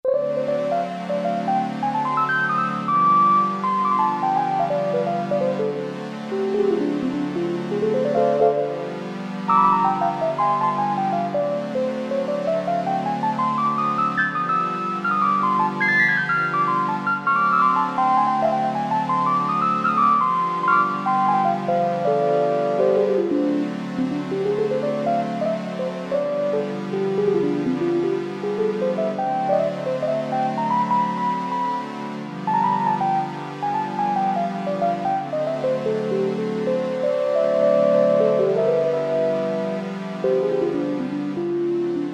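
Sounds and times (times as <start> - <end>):
Oberheim OB-8 synthesizer electric piano: 0.1 - 42.1
Oberheim OB-8 synthesizer strings: 0.1 - 42.1.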